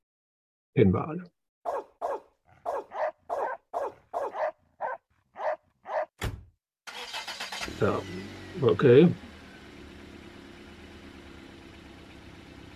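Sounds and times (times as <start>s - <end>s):
speech: 0.8s - 1.4s, 7.8s - 9.3s
dog barking: 1.7s - 6.1s
sharp thump: 6.2s - 6.5s.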